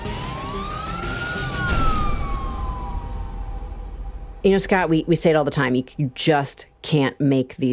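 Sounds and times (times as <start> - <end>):
police siren wailing: 0.0 - 4.4
speech: 4.4 - 7.7.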